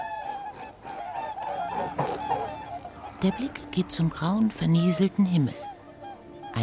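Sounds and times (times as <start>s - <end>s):
traffic from a nearby motorway: 0.0s - 4.0s
group of whooper swans honking flying past: 0.0s - 6.6s
wind: 0.0s - 6.6s
speech: 3.2s - 5.7s.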